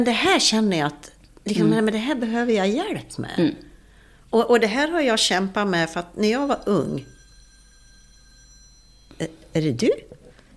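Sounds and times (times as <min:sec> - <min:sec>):
speech: 0:00.0 - 0:03.7, 0:04.3 - 0:07.2, 0:09.2 - 0:10.2
telephone ringing with a thin electronic ringtone: 0:06.2 - 0:10.5.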